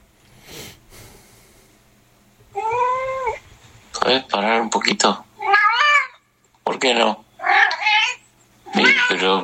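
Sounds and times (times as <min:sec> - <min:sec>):
cat meowing: 0:02.5 - 0:03.4, 0:05.4 - 0:06.2, 0:07.4 - 0:09.4
speech: 0:04.1 - 0:05.2, 0:06.8 - 0:07.2, 0:09.2 - 0:09.4.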